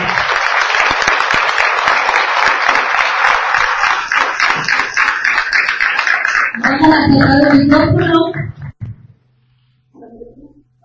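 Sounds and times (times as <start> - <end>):
crowd applauding for honoured local residents: 0.0 - 8.5
speech: 6.9 - 8.4.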